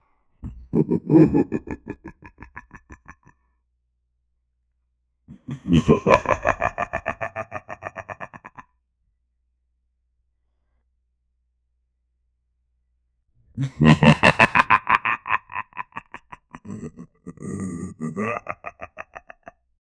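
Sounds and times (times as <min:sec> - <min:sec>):
evil deep laugh: 0:00.4 - 0:03.4, 0:05.3 - 0:08.7, 0:13.6 - 0:19.6.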